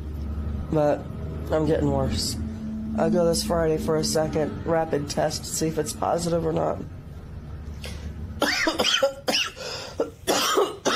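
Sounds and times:
speech: 0.7s - 7.0s, 8.6s - 9.5s
person coughing repeatedly: 8.4s - 10.9s
person gasping: 9.6s - 10.1s.

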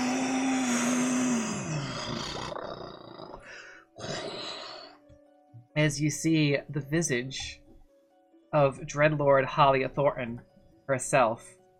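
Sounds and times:
dragon roaring and growling: 0.0s - 3.4s
speech: 5.8s - 7.6s, 8.5s - 11.6s.

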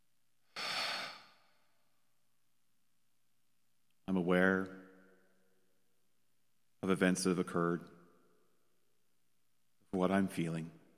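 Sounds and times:
breathy exhale through the mouth during a deep breathing exercise: 0.5s - 1.6s
speech: 4.3s - 4.8s, 6.9s - 8.0s, 10.0s - 10.8s.

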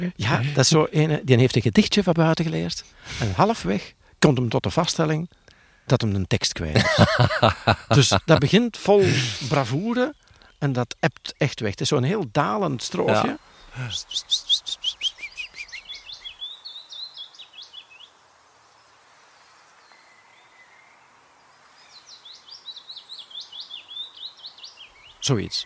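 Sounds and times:
speech: 0.0s - 14.8s, 25.3s - 25.6s
laughter: 6.8s - 9.8s, 12.9s - 13.4s
chaffinch singing a cascading downward trill: 6.8s - 18.2s, 21.9s - 25.6s.

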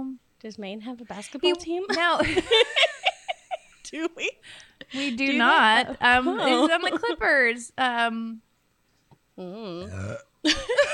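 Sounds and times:
speech: 0.4s - 2.9s, 3.9s - 8.5s, 9.4s - 10.9s
long burp into a fist: 9.7s - 10.4s.

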